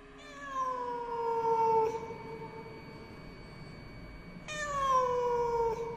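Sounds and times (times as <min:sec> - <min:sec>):
cat meowing while being chased out through a window: 0:00.2 - 0:02.1, 0:04.5 - 0:05.9.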